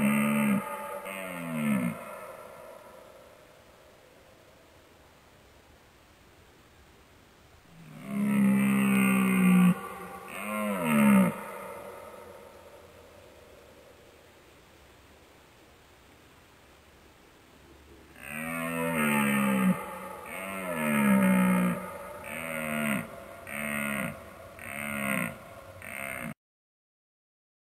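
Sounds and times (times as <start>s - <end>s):
fallow deer groaning: 0.0s - 2.7s, 7.7s - 12.8s, 18.2s - 26.4s.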